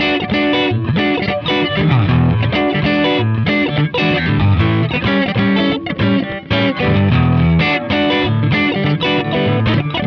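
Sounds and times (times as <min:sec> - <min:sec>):
boogie partial verse progression loop in E: 0:00.0 - 0:10.0.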